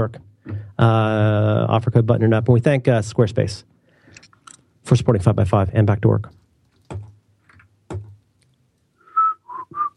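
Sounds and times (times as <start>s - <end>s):
speech: 0.0s - 3.8s, 4.9s - 7.0s
person whistling a tune: 9.0s - 9.9s.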